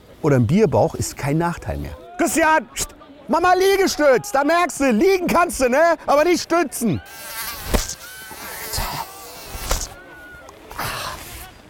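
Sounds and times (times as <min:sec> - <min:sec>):
speech: 0:00.2 - 0:07.4
mosquito buzzing in the room: 0:07.0 - 0:10.0.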